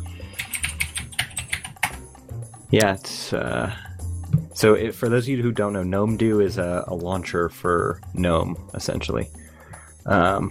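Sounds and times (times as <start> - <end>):
typing on a mechanical keyboard: 0.4 - 2.0
speech: 2.7 - 3.8, 4.6 - 9.4, 10.1 - 10.4.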